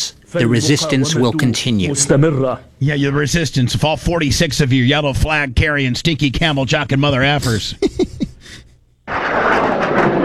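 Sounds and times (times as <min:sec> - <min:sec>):
speech: 0:00.3 - 0:08.6
laughter: 0:07.4 - 0:08.7
loud roaring blast of rockets being intercepted by air defense: 0:09.1 - 0:10.2.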